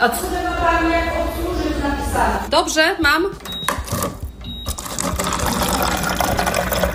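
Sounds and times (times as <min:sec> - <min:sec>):
speech: 0:00.0 - 0:04.2
water streaming from a free public drinking water dispenser operated by pressing: 0:04.7 - 0:06.9.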